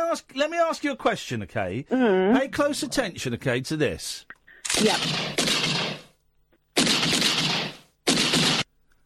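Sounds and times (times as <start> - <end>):
speech: 0.1 - 5.8
gunshots from a recording of a shooting: 4.7 - 6.2, 6.8 - 8.7.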